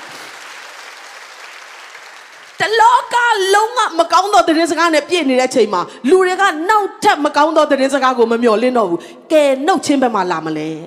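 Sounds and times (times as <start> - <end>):
church congregation clapping hands: 0.0 - 3.2
speech: 2.6 - 10.8.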